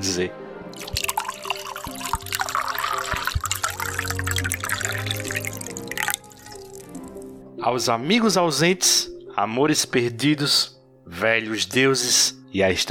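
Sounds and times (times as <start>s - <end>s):
speech: 0.0s - 0.4s, 7.6s - 12.8s
Chateau Lafite 1828 wine pouring into glasses for a toast: 0.7s - 7.3s
small splashing drips of wine: 0.8s - 7.3s.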